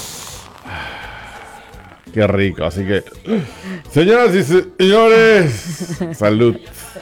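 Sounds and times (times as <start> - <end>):
cola fizzing as poured into a glass: 0.0 - 4.0
speech: 2.1 - 7.0
laughter: 3.4 - 7.0.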